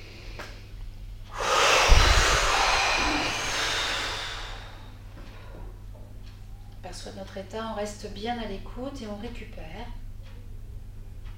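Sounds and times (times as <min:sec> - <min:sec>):
person breathing deeply during a guided breathing exercise: 0:01.3 - 0:05.7
speech: 0:07.1 - 0:10.0.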